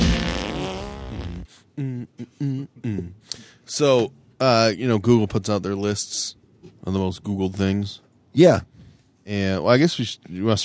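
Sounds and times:
loud drawn-out fart sound: 0.0 - 1.5
speech: 1.8 - 8.7, 9.3 - 10.6.

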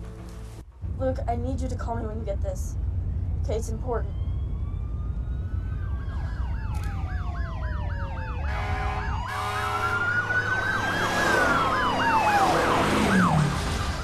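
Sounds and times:
low rumble of traffic: 0.0 - 14.0
speech: 1.0 - 4.2
police sirens wailing and yelping: 3.8 - 14.0.

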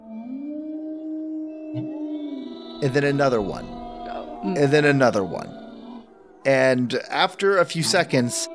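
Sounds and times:
dog howling at a door: 0.0 - 6.5
speech: 1.7 - 2.0, 2.8 - 3.8, 4.4 - 5.6, 6.4 - 8.5.

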